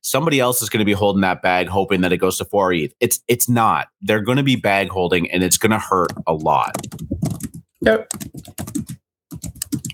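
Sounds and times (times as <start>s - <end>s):
speech: 0.1s - 8.6s
computer keyboard typing: 5.9s - 9.9s.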